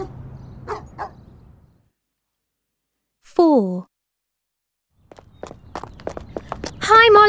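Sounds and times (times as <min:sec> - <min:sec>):
dog on a walk barking with a whiny downward-sliding tone: 0:00.0 - 0:01.3.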